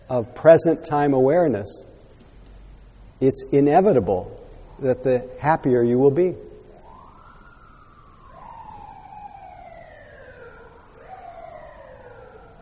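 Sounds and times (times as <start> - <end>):
speech: 0.1 - 1.9, 3.2 - 6.5
steady rumble of traffic: 1.4 - 12.6
emergency vehicle siren wailing outside: 4.0 - 12.6.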